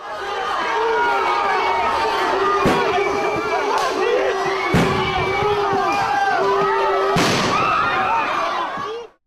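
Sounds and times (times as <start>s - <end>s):
dense crowd screaming and shouting: 0.0s - 9.2s
sharp stun grenade blasts: 7.2s - 7.6s.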